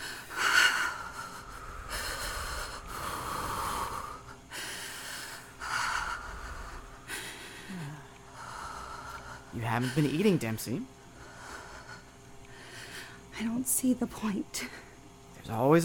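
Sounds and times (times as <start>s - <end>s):
heavy rhythmic breathing with snorting edge: 0.0s - 10.4s, 11.1s - 13.3s
speech: 9.6s - 11.0s, 13.4s - 14.8s, 15.5s - 15.8s.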